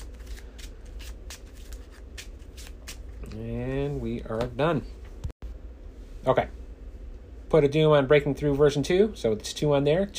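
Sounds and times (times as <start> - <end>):
riffle shuffling of a card game deck: 0.0 - 3.2
speech: 3.4 - 5.0, 6.2 - 6.6, 7.5 - 10.1.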